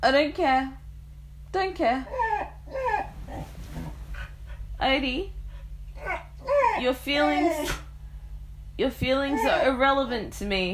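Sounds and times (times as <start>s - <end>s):
speech: 0.0s - 0.8s, 1.5s - 2.2s, 4.8s - 5.4s, 6.0s - 7.8s, 8.8s - 10.7s
low hum: 0.0s - 10.7s
dog whining yelps: 2.1s - 3.5s, 6.0s - 7.9s
dog snuffly grunts: 2.1s - 4.7s, 6.0s - 7.9s.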